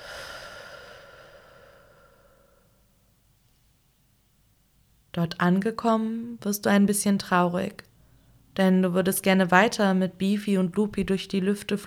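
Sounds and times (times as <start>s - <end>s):
deep breath in: 0.0s - 2.9s
slow soft exhale after a deep breath: 0.0s - 3.0s
speech: 5.2s - 7.9s, 8.6s - 11.8s.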